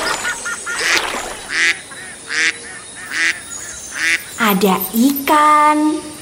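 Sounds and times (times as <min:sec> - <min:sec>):
duck quacking: 0:00.1 - 0:03.4
speech: 0:04.5 - 0:06.1.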